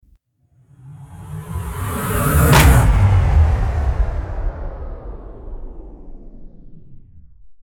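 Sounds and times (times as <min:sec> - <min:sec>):
descending downer hit effect: 0:00.7 - 0:07.3.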